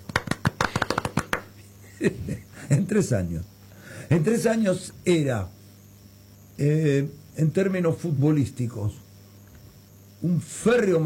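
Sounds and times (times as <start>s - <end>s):
quick sharp hand claps: 0.0s - 1.6s
speech: 2.0s - 3.5s, 4.1s - 5.6s, 6.6s - 9.0s, 10.2s - 11.0s.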